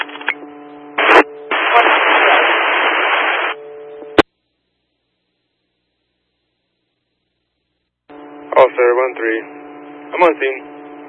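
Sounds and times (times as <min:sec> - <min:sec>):
police radio static hiss: 0:00.0 - 0:00.4, 0:01.0 - 0:04.3, 0:08.5 - 0:09.5, 0:10.1 - 0:11.0
faint constant tones: 0:00.1 - 0:11.0
speech: 0:10.2 - 0:10.8.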